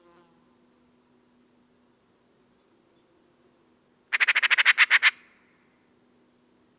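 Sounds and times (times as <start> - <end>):
Eurasian magpie Pica pica chattering rattle: 4.1 - 5.3.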